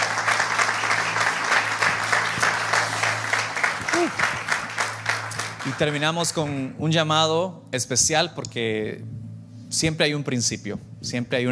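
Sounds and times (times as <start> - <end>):
studio audience applauding after a prayer: 0.0 - 6.6
faint low hum: 0.0 - 11.4
vocal cheer: 3.8 - 4.4
speech: 5.7 - 11.4.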